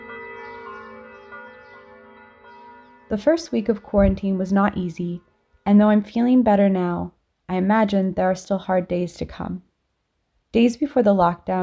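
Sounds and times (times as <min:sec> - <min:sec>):
church bells ringing in the morning in Italy during coronavirus lockdown: 0:00.0 - 0:04.5
speech: 0:03.1 - 0:09.7, 0:10.5 - 0:11.6.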